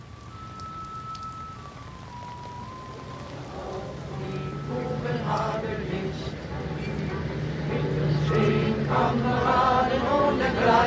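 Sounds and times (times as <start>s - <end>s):
rain pattering on umbrellas: 0.0s - 10.8s
crowd murmuring: 3.4s - 10.8s.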